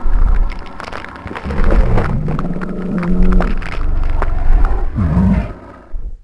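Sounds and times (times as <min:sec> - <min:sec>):
Spinosaurus swallowing: 0:01.2 - 0:06.1.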